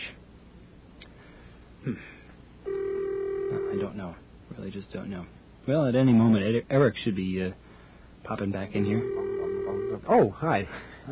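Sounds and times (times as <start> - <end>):
speech: 1.8 - 2.2, 3.9 - 7.6, 8.2 - 11.0
telephone ring tone through a phone earpiece: 2.7 - 3.9, 8.7 - 10.1
phone line click: 8.8 - 10.0.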